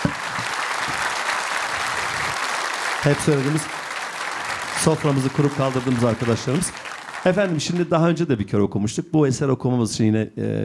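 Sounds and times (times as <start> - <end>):
audience applause for the orchestra at a live music performance: 0.0 - 8.2
speech: 3.0 - 3.8, 4.8 - 10.6.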